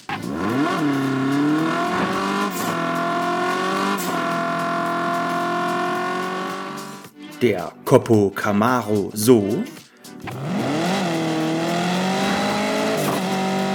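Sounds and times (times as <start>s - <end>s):
Fiat 500 car engine revving: 0.0s - 7.1s, 10.2s - 13.7s
speech: 7.4s - 10.4s.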